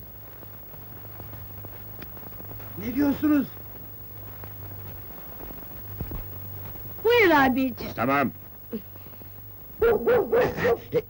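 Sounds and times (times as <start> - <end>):
speech: 2.8 - 3.6, 7.3 - 8.9, 9.8 - 11.0
dog barking: 9.8 - 11.0.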